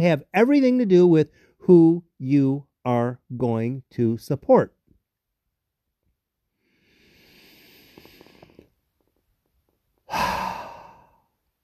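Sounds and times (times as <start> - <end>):
speech: 0.0 - 4.8
full cleansing breath: 6.5 - 8.7, 10.0 - 11.4.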